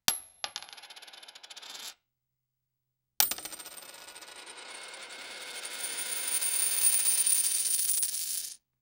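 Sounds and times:
coins in a transaction: 0.4 - 2.0, 3.2 - 8.6.

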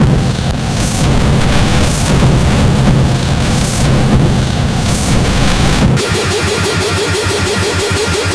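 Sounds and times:
boss battle fire sound effect: 0.0 - 8.2.

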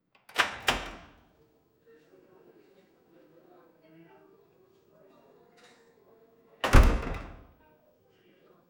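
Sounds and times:
shop door closing: 0.3 - 1.2, 6.6 - 7.5.

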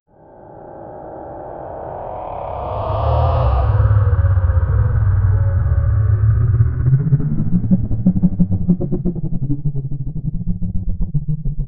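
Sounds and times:
futuristic flying car: 0.1 - 11.6.

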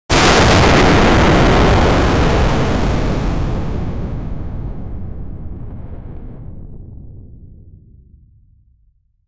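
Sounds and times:
powerful plasma-like explosion: 0.1 - 7.9.

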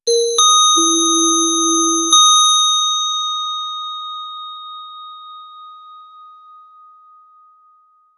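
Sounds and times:
bright notification bell: 0.1 - 6.4.

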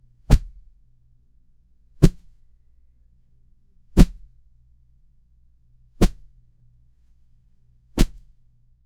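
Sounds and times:
cloth thud soft impact: 0.3 - 0.6, 2.0 - 2.2, 8.0 - 8.2.

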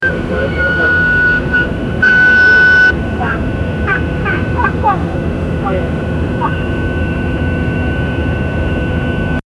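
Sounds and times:
airplane: 0.0 - 9.4
airplane passengers screaming: 0.2 - 4.8.

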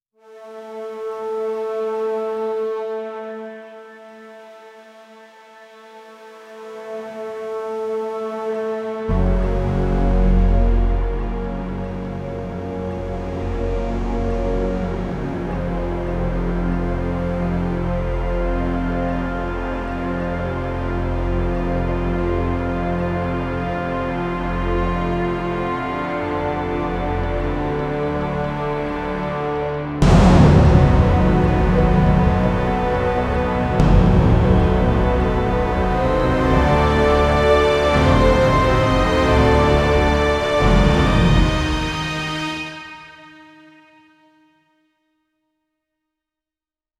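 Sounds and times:
epic orchestral music with brass: 0.2 - 44.5.

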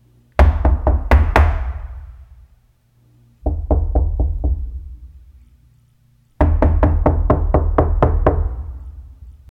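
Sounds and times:
hollow knocking on a wooden door: 0.4 - 2.1, 3.4 - 5.0, 6.4 - 8.9.

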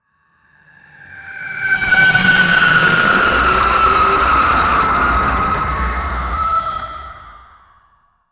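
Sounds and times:
otherworldly alien scream: 1.4 - 7.6.

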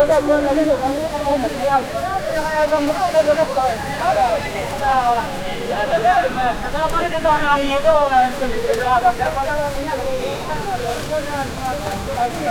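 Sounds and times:
busy Tamil village street: 0.0 - 12.4.

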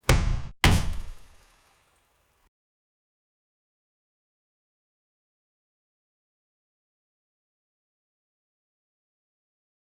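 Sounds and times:
boxing sound effect: 0.0 - 1.4.

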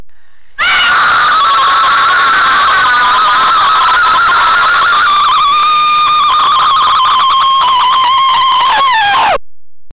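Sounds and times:
very loud distorted woman screaming: 0.6 - 9.4.

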